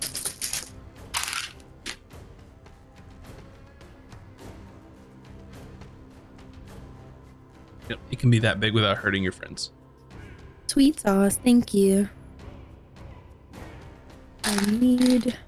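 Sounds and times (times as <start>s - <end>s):
dice spilling out of a dice box: 0.0s - 2.0s, 14.4s - 15.4s
speech: 7.9s - 9.8s, 10.8s - 12.2s, 14.6s - 15.4s.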